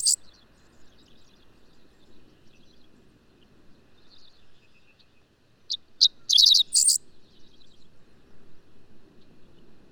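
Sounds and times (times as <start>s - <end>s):
bird song: 0.0s - 2.9s, 4.0s - 7.9s.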